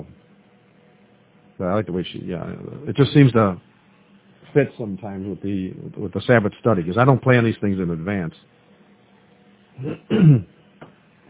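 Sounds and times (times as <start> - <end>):
speech: 1.6 - 3.7, 4.5 - 8.6, 9.8 - 10.6
person clearing throat: 9.8 - 10.5.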